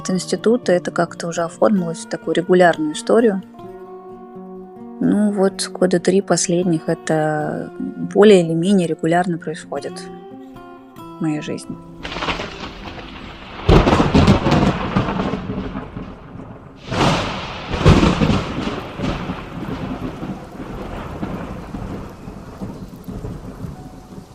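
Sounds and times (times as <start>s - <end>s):
speech: 0.0s - 3.7s, 5.0s - 10.2s, 11.2s - 12.3s
heavy rain hissing: 12.0s - 16.1s, 16.8s - 24.3s
thunder cracks: 12.0s - 24.3s.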